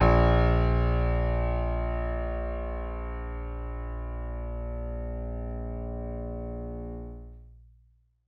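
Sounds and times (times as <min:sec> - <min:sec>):
stereo acoustic piano: 0:00.0 - 0:07.3.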